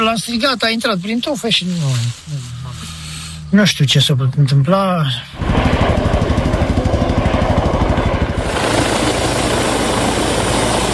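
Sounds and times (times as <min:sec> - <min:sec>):
speech: 0:00.0 - 0:02.5, 0:03.5 - 0:06.2
helicopter roaring engine whine: 0:05.3 - 0:10.9
helicopter rotor thumping during search for missing child: 0:05.4 - 0:10.9.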